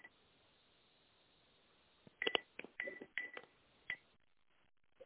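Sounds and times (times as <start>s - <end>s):
dialing tones on a phone line as a call is transferred: 2.2s - 4.1s.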